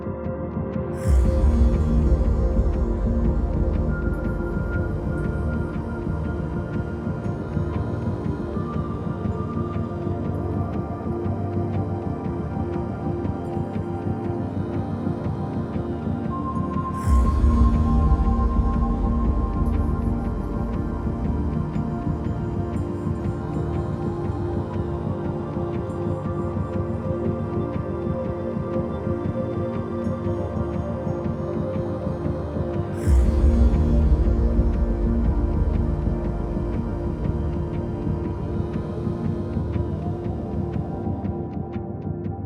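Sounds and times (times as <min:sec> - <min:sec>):
drone loop: 0:00.1 - 0:42.3.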